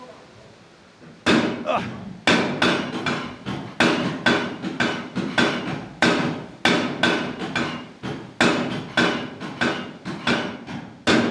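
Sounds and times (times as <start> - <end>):
water-powered trip hammer pounding with heavy metallic blows: 1.2 - 11.2
person exclaiming: 1.6 - 1.9
speech: 1.6 - 2.1.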